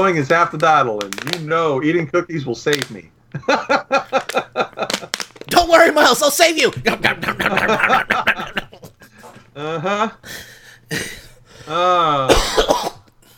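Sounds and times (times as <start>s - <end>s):
speech: 0.0s - 8.6s, 9.6s - 13.0s
laughter: 3.3s - 5.1s, 6.7s - 10.2s
person with a persistent cough four weeks into the illness: 11.9s - 13.3s.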